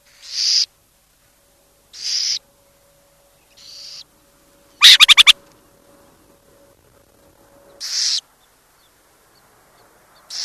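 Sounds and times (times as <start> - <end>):
burrowing owl hissing: 4.8 - 5.4.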